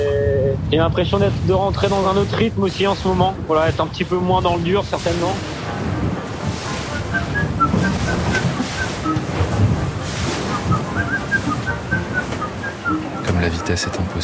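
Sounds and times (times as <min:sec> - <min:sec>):
steady rushing wind on deck of a racing sailboat at sea: 0:00.0 - 0:13.6
churning water around a racing sailboat in the Pacific Ocean: 0:00.0 - 0:14.2
speech: 0:00.7 - 0:05.6, 0:13.4 - 0:14.2
faint whistling tones from rigging of a racing sailboat: 0:06.9 - 0:09.2, 0:10.4 - 0:14.0.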